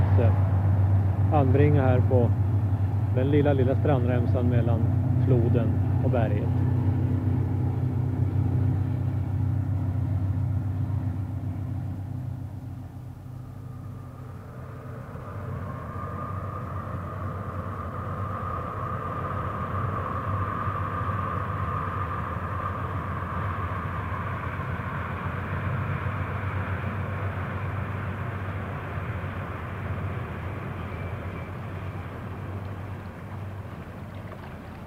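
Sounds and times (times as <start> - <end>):
faint tonal hum: 0.0 - 34.8
train rushing past on the railway across a river: 0.0 - 34.8
speech: 1.3 - 2.4, 3.1 - 6.7.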